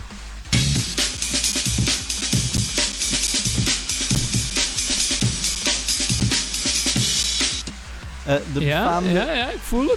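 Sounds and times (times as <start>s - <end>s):
fast punchy breakbeat drum loop: 0.0s - 7.9s
speech: 8.3s - 9.9s.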